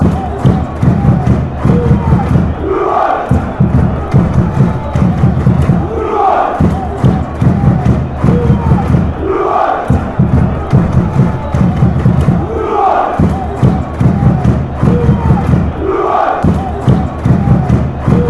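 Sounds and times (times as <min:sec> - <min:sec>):
drums: 0:00.0 - 0:18.2.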